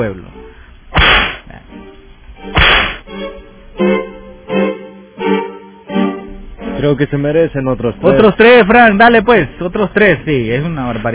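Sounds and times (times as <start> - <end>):
speech: 0.0 - 0.4, 6.8 - 11.1
loud sharp whip lashes: 1.0 - 1.5, 2.6 - 3.0.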